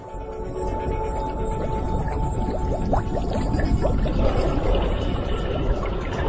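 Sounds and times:
methane gas bubbling and gurgling through seawater from a seabed seep: 0:01.3 - 0:06.2.

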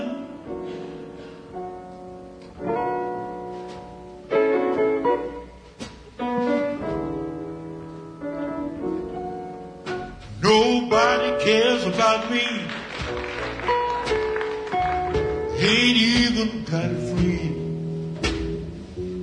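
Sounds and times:
live slow blues song instrumental intro: 0:00.0 - 0:19.2
speech: 0:15.6 - 0:17.5.

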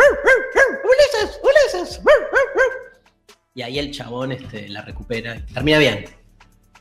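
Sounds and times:
human voice imitating a dog barking: 0:00.0 - 0:02.9
speech: 0:03.6 - 0:06.2.

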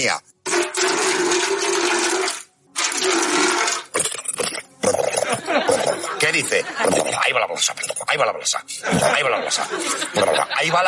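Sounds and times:
speech: 0:00.0 - 0:00.9, 0:06.4 - 0:10.8
running water gushing: 0:00.5 - 0:04.0
laughter: 0:05.2 - 0:07.2, 0:08.8 - 0:10.8.

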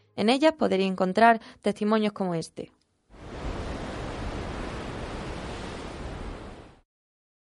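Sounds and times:
speech: 0:00.2 - 0:02.8
sea waves on a beach: 0:03.1 - 0:06.8.

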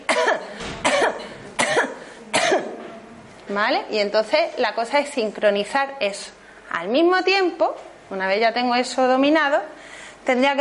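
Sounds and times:
person coughing while pulling in the belly: 0:00.0 - 0:03.0
speech: 0:03.5 - 0:10.5.

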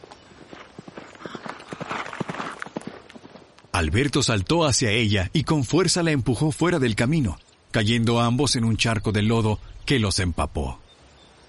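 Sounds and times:
several horses galloping wildly with hooves pounding: 0:00.0 - 0:04.4
speech: 0:03.8 - 0:10.8.

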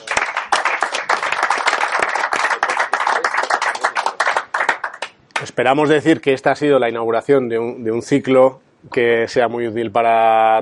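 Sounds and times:
audience applause for a speaker at a talk series: 0:00.0 - 0:05.1
speech: 0:05.5 - 0:10.6.

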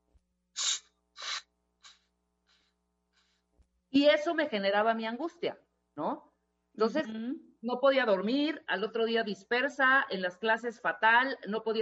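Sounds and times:
person imitating tinnitus with breathy hissing: 0:00.6 - 0:02.0
speech: 0:03.9 - 0:11.8.

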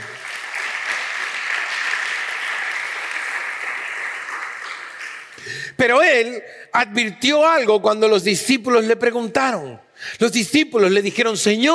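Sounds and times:
audience at a church service applauding: 0:00.0 - 0:05.4
speech: 0:05.4 - 0:11.7.

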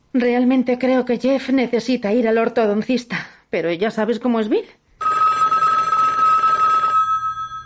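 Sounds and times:
speech: 0:00.2 - 0:04.8
telephone second line ringing in a bright steady trill: 0:05.0 - 0:07.6.

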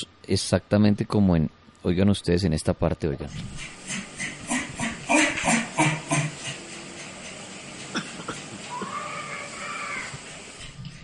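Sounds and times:
speech: 0:00.0 - 0:03.8
hiss of a lo-fi recording: 0:00.0 - 0:11.0
child screaming in a hissy lo-fi recording: 0:08.7 - 0:10.2.

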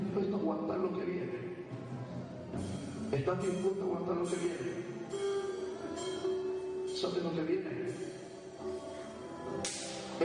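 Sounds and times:
steady low murmur: 0:00.0 - 0:10.2
speech: 0:00.2 - 0:01.6, 0:02.6 - 0:05.0, 0:07.0 - 0:08.3
sharp slap in a played video: 0:09.6 - 0:10.2.

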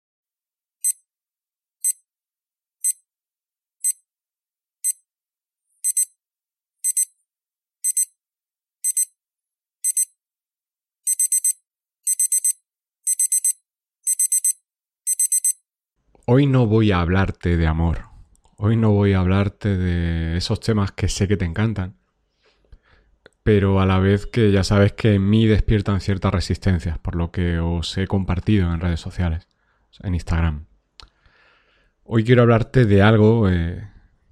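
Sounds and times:
digital alarm clock beeping: 0:00.8 - 0:01.0, 0:01.8 - 0:02.0, 0:02.8 - 0:03.0, 0:03.8 - 0:04.0, 0:05.8 - 0:06.2, 0:06.8 - 0:07.2, 0:07.8 - 0:08.2, 0:08.8 - 0:09.2, 0:09.8 - 0:10.2, 0:11.1 - 0:15.6
speech: 0:16.3 - 0:22.0, 0:23.4 - 0:30.7, 0:32.1 - 0:33.9.

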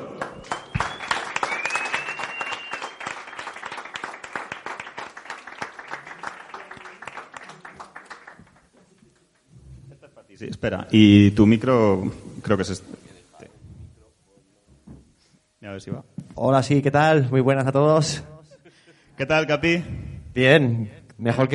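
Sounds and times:
crowd applauding warmly: 0:00.0 - 0:09.5
laughter: 0:09.6 - 0:10.5
speech: 0:10.4 - 0:12.9, 0:15.8 - 0:18.3, 0:19.2 - 0:21.5.

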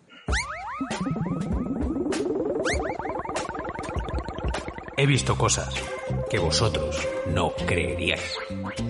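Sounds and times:
short self-made electronic podcast intro jingle: 0:00.4 - 0:07.3
speech: 0:05.0 - 0:08.8.

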